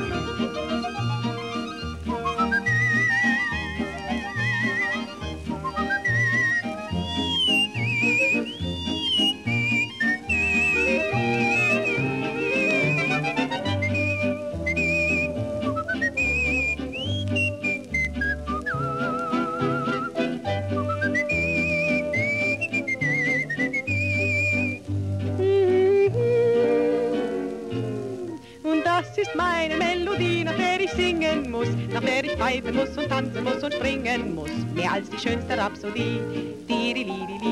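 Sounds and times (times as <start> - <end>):
whistled melody from an old song: 0.0 - 28.4
full band accompaniment with steady bass notes: 0.0 - 36.7
speech: 32.5 - 37.5.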